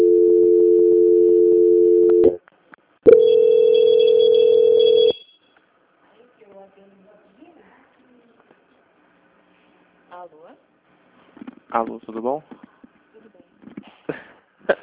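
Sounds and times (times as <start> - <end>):
low continuous telephone tone during a bank call transfer: 0.0 - 2.4, 3.1 - 5.6
speech: 11.8 - 12.6.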